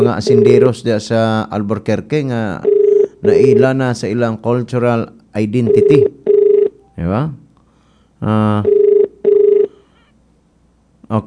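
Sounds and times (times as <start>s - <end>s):
cellphone ringing with electronic warbling rings: 0.0s - 0.7s, 2.6s - 3.8s, 5.6s - 7.0s, 8.6s - 10.0s
speech: 0.0s - 6.2s, 7.0s - 7.4s, 8.2s - 8.8s, 11.1s - 11.2s.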